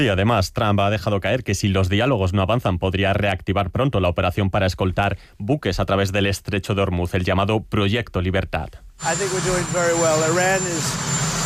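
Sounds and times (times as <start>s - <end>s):
speech: 0.0s - 11.4s
constant high whine: 9.0s - 11.4s
helicopter engine roar: 9.0s - 11.4s.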